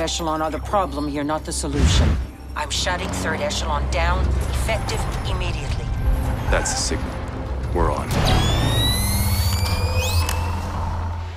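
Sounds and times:
speech: 0.0s - 7.2s
night-vision goggles powering on with thin high electronic whine: 8.2s - 11.3s.

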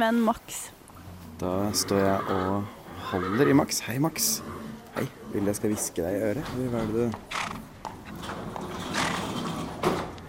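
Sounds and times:
speech: 0.0s - 0.8s, 1.4s - 8.4s
horse shuffling in a stable: 0.0s - 10.2s
wood creaking in a stable: 0.9s - 10.2s
horse hoof thuds in a stable: 5.2s - 10.2s.

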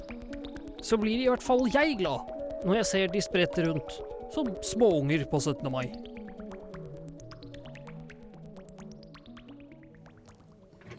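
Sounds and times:
speech: 0.8s - 6.1s
water droplets bouncing on hydrophobic surface: 5.9s - 10.9s.

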